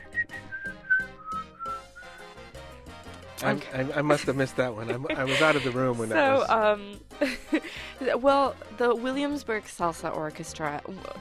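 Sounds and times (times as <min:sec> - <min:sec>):
bright whistled melody: 0:00.0 - 0:02.4
steady rhythmic instrumental backing: 0:00.0 - 0:11.1
laughter: 0:03.4 - 0:08.0
speech: 0:03.4 - 0:11.1.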